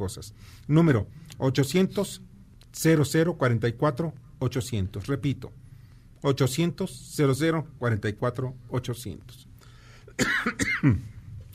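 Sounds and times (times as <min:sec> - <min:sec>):
speech: 0:00.0 - 0:05.6, 0:06.2 - 0:09.5, 0:10.2 - 0:11.1
rasping coughs: 0:10.1 - 0:11.1.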